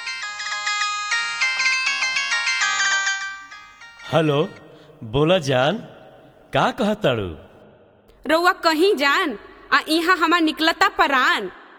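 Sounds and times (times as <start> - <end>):
electronic phone ringtone melody while a call connects: 0.0 - 4.7
speech: 4.1 - 7.5, 8.2 - 11.6.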